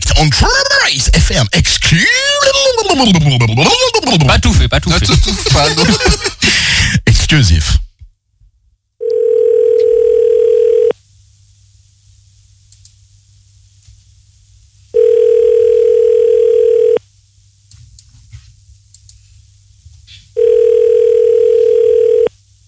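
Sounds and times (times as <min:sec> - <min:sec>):
speech: 0:00.2 - 0:07.8
laughter: 0:02.2 - 0:06.8
telephone ringback tone during a live radio call: 0:09.0 - 0:10.9, 0:15.0 - 0:17.0, 0:20.4 - 0:22.3.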